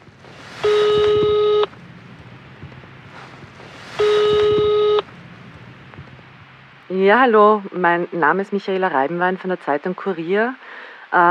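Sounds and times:
faint noise: 0.0 - 11.3
telephone ringing tones on a call to an institution: 0.6 - 2.8, 3.9 - 5.2
speech: 7.0 - 11.3.

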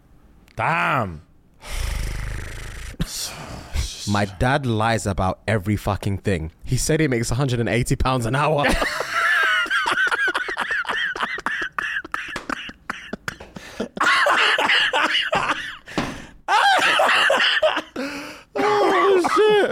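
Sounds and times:
speech: 0.6 - 1.8, 3.2 - 9.0
person laughing: 8.6 - 15.8, 16.5 - 19.7
person coughing: 11.0 - 15.9, 18.6 - 19.7.

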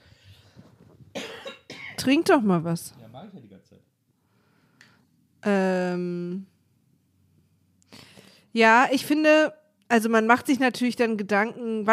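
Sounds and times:
harsh coughs: 1.1 - 2.0
speech: 2.0 - 3.0, 5.4 - 6.5, 8.5 - 11.9
quiet breathing and throat noise: 4.1 - 5.2, 7.8 - 8.6.

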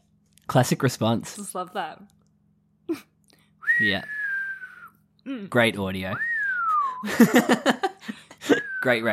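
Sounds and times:
speech: 0.5 - 2.2, 2.9 - 3.1, 3.8 - 4.2, 5.2 - 6.3, 7.0 - 9.1
short downward gliding whistle: 3.6 - 5.0, 6.2 - 7.1, 8.5 - 9.0
laughter: 7.0 - 8.7.

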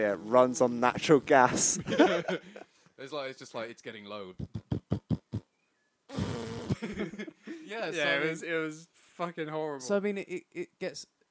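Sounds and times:
speech: 0.0 - 4.6, 6.8 - 11.2
laughter: 1.5 - 2.7, 6.7 - 8.2
voice imitating a sputtering fart-like bike engine: 4.3 - 5.4.

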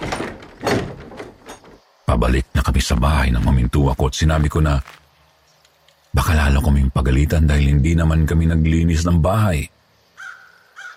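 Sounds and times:
house door sliding and thudding shut: 0.0 - 2.0
speech: 2.1 - 5.0, 6.1 - 9.8.

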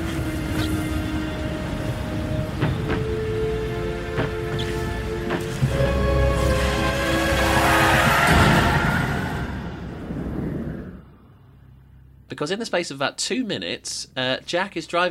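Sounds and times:
car tires skidding with a screech: 0.2 - 9.7
car crash: 5.4 - 10.4
speech: 12.4 - 15.0.

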